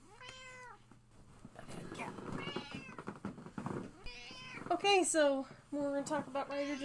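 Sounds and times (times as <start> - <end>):
rustling background: 0.0 - 6.8
cat meowing: 0.1 - 0.8, 2.4 - 3.1, 4.0 - 4.7, 6.6 - 6.8
speech: 4.7 - 6.8.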